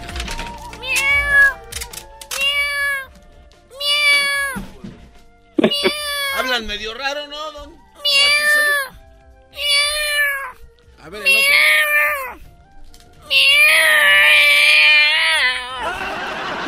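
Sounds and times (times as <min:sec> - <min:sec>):
cats meowing: 0:00.6 - 0:01.7, 0:02.3 - 0:03.1, 0:03.7 - 0:04.7, 0:05.6 - 0:06.5, 0:08.0 - 0:12.5, 0:13.2 - 0:16.0
laughter: 0:05.6 - 0:06.0, 0:15.7 - 0:16.6
speech: 0:06.6 - 0:07.5, 0:11.1 - 0:11.8.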